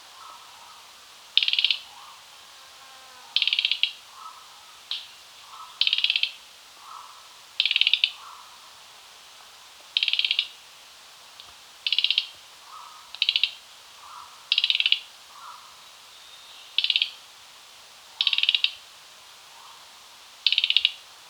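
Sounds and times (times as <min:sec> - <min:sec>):
Mugimaki flycatcher rattling calls: 0:01.4 - 0:02.1, 0:03.4 - 0:08.5, 0:10.0 - 0:10.6, 0:11.8 - 0:15.6, 0:18.2 - 0:18.8, 0:20.5 - 0:21.0.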